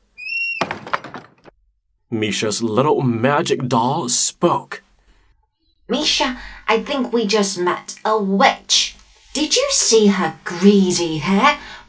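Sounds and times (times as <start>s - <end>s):
door creaking: 0.0s - 1.6s
door swinging shut with a rattling clattering close: 0.2s - 1.6s
speech: 2.1s - 4.8s, 5.9s - 11.8s.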